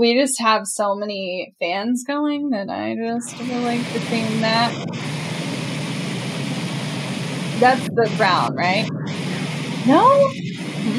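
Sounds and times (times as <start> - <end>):
speech: 0.0 - 5.3, 7.6 - 9.2, 9.8 - 10.9
steady pink noise: 3.2 - 10.9.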